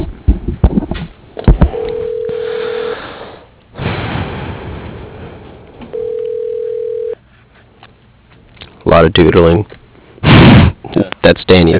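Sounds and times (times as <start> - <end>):
phone line noise and static: 0.0 - 3.8, 5.4 - 11.7
steady electronic phone tones during call transfer: 1.7 - 3.0, 5.9 - 7.2
speech: 9.0 - 9.8, 11.2 - 11.7.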